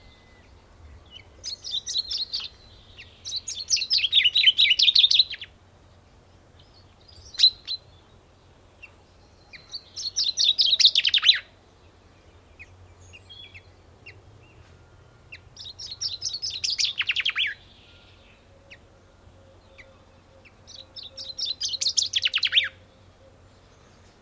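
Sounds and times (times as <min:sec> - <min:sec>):
common chaffinch Fringilla coelebs singing: 0:00.0 - 0:24.2
faint chirps from other birds: 0:00.0 - 0:24.2.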